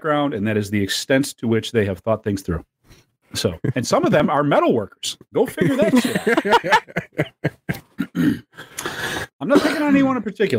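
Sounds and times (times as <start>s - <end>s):
speech: 0.0s - 7.3s, 9.5s - 10.5s
laughter: 5.6s - 8.2s
harsh coughs: 7.7s - 8.5s, 9.5s - 10.1s.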